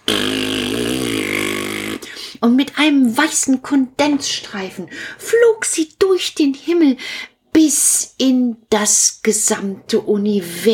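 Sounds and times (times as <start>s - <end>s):
loud drawn-out fart sound effect: 0.0s - 2.1s
speech: 2.4s - 10.7s.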